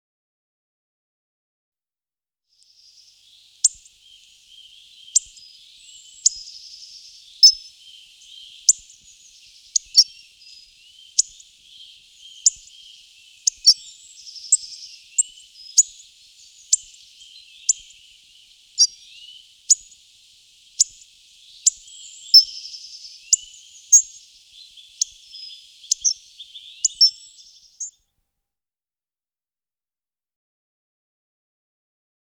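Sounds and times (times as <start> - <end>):
hawfinch and songbirds singing: 2.7 - 28.0.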